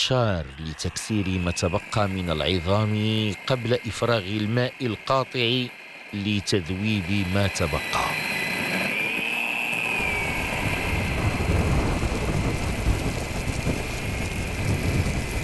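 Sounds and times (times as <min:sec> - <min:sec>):
speech: 0:00.0 - 0:08.2
steady dense rain pouring down: 0:00.0 - 0:09.2, 0:09.9 - 0:15.4
low rolling rumble of thunder: 0:10.0 - 0:15.4.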